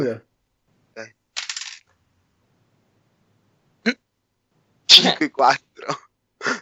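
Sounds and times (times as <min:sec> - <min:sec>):
speech: 0:00.0 - 0:00.3, 0:01.0 - 0:01.2, 0:05.0 - 0:06.0
dice rolling across a hard tabletop: 0:01.4 - 0:01.9.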